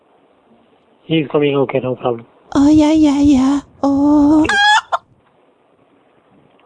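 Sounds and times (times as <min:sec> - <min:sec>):
faint low hum: 0:00.0 - 0:06.6
speech: 0:01.1 - 0:04.7
sharp chicken clucks: 0:04.4 - 0:05.0.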